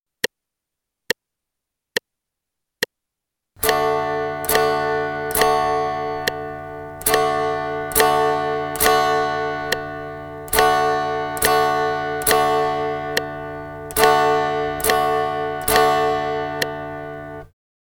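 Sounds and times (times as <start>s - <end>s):
guitar strumming G chord in quarter notes: 3.6s - 17.5s.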